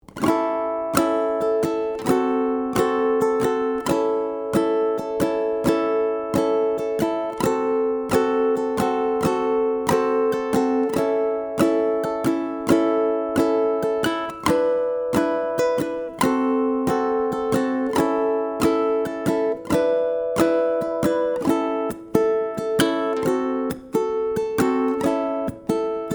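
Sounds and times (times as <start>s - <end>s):
blues strumming: 0.0s - 26.1s.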